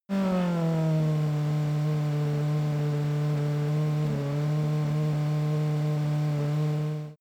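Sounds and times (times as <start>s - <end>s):
F1 racing car engine decelerating to idle: 0.1s - 7.1s.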